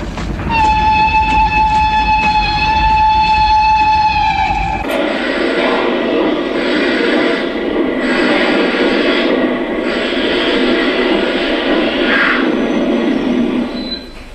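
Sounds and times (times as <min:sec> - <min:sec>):
moving train rumbling and clattering: 0:00.0 - 0:14.3
locomotive warning whistle on an open plain: 0:00.5 - 0:05.8.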